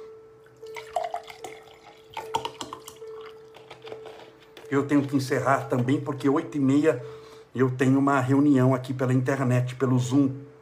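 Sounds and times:
water pouring into a cup: 0.6 - 4.2
speech: 4.7 - 10.5.

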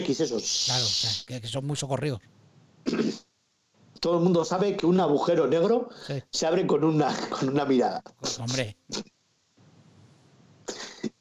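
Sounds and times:
speech: 0.0 - 3.3, 4.0 - 9.1
low hiss: 0.0 - 11.1
person with a sore throat coughing from laughing: 2.8 - 3.3, 10.6 - 11.1.

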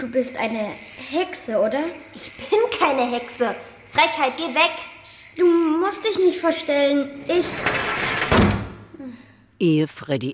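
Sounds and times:
speech: 0.0 - 8.4, 9.0 - 10.3
door rattling with movement: 6.8 - 8.9
door slamming shut: 7.2 - 8.9.

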